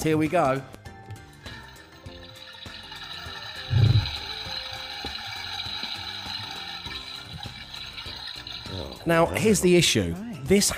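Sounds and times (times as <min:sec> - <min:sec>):
speech: 0:00.0 - 0:00.8, 0:09.0 - 0:10.7
toilet flushing with faint rattling: 0:02.0 - 0:09.1.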